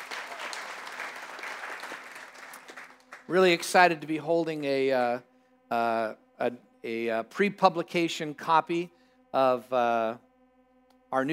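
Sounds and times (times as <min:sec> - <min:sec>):
audience applauding: 0:00.0 - 0:03.8
speech: 0:03.3 - 0:10.2, 0:11.1 - 0:11.3.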